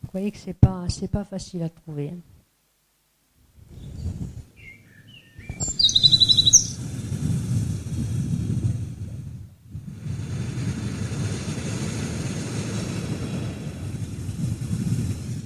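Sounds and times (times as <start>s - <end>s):
speech: 0.2s - 2.3s
steady loud wind rumble: 3.4s - 15.4s
male bird singing high rapid chirping notes: 4.6s - 6.8s.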